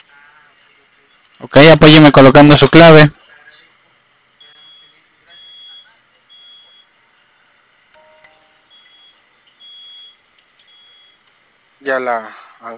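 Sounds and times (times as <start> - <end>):
steady hum: 0.0 - 12.7
speech: 1.4 - 3.2, 12.0 - 12.7
high-pitched electronic alarm beeping: 4.4 - 7.0, 8.0 - 11.2.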